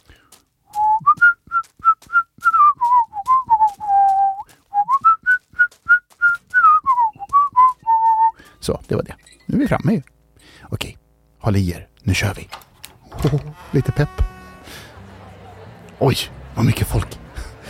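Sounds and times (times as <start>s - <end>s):
crisp footsteps of person walking: 0.0s - 9.4s
person whistling a lilting wandering melody: 0.7s - 8.4s
speech: 8.9s - 10.1s, 11.4s - 12.6s, 13.2s - 14.3s, 16.0s - 17.2s
laughter: 14.5s - 17.6s.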